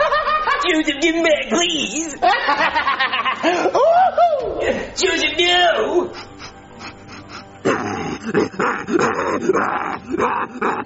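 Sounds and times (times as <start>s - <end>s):
laughter: 0.0s - 1.0s, 2.0s - 5.0s
speech: 0.7s - 6.3s, 7.7s - 10.8s
dog barking and growling aggressively: 7.6s - 10.8s.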